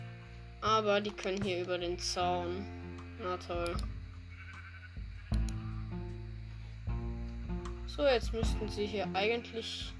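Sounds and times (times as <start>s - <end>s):
speech: 0.8s - 3.9s, 8.0s - 9.9s
sheep bleating in a video game: 4.3s - 5.9s.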